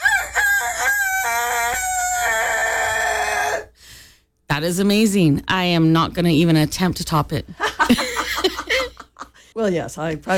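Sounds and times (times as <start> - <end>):
person imitating a rooster crowing: 0.0 - 3.7
speech: 4.6 - 8.1, 9.6 - 10.3
laughter: 7.6 - 9.4.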